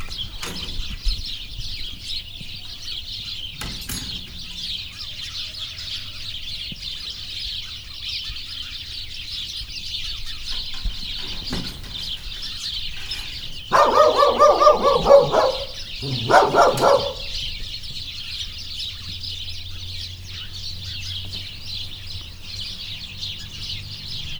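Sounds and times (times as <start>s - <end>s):
flock of house sparrows chirping in a farmyard in Somogyszentpál: 0.0s - 24.3s
dog in a farmyard in Somogyszentpál: 13.0s - 17.7s.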